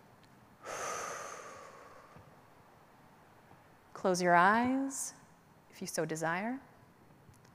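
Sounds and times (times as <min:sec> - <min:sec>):
long deep breath during a guided relaxation: 0:00.6 - 0:02.2
speech: 0:04.0 - 0:05.2, 0:05.8 - 0:06.7.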